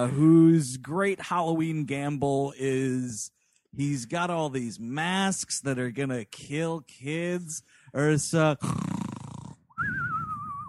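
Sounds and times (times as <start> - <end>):
speech: 0.0 - 8.9
person imitating a cartoonish snore: 8.6 - 9.7.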